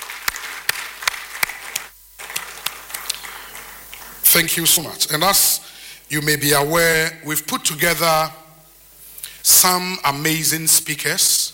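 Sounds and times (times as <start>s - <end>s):
audience applauding: 0.0s - 4.8s
speech: 4.3s - 8.4s, 9.4s - 11.5s.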